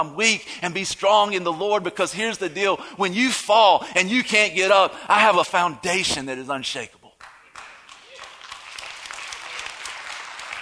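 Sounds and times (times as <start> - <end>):
speech: 0.0 - 7.0
audience clapping: 7.2 - 10.6.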